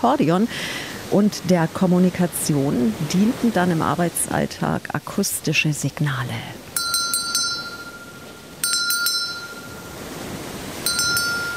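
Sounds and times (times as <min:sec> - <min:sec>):
speech: 0:00.0 - 0:06.6
ship's bell ringing: 0:06.8 - 0:11.5.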